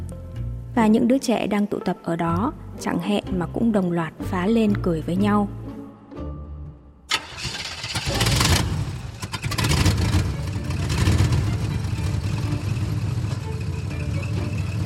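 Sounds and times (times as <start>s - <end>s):
speech: 0.8s - 5.6s
heavy truck engine starting: 7.1s - 14.8s.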